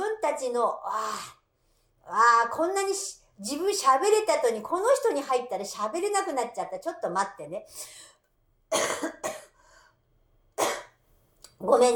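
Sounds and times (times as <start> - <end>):
speech: 0.4 - 1.4, 2.0 - 8.1, 8.7 - 9.5, 11.6 - 11.9
person coughing harshly: 8.7 - 9.6, 10.6 - 11.0.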